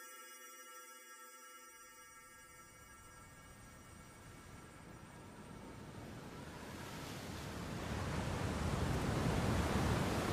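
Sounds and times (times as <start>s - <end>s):
ocean waves crashing: 5.9s - 10.3s.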